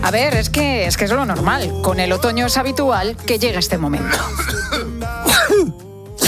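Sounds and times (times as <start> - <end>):
speech: 0.1 - 4.7
raspy cough: 4.0 - 6.2
throat clearing: 4.1 - 6.2.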